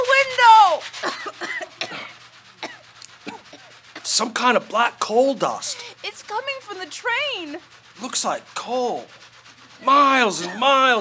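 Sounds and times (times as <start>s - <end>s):
person coughing in dusty air from a coal train: 1.0s - 4.1s
speech: 4.2s - 9.2s, 9.8s - 11.0s.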